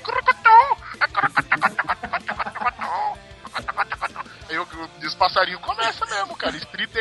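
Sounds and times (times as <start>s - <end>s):
man imitating bird calls with squeaky warbling chirps: 0.0s - 4.4s
laughter: 0.0s - 4.7s, 5.6s - 6.9s
speech: 5.4s - 5.7s, 6.4s - 6.9s.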